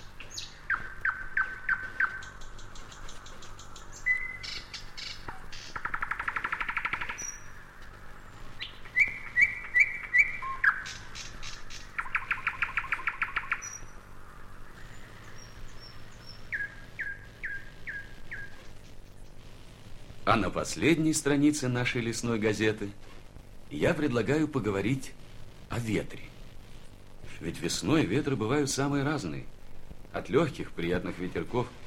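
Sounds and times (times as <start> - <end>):
nightingale singing, whistling and clicking: 0.0 - 19.3
speech: 20.3 - 23.0, 23.8 - 25.2, 25.8 - 26.3, 27.4 - 29.5, 30.1 - 31.8.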